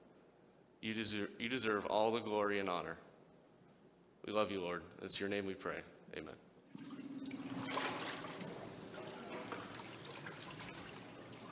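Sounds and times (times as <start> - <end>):
speech: 0.8 - 3.1, 4.2 - 6.9
water trickling and splashing in a warm baptismal pool: 6.7 - 11.5.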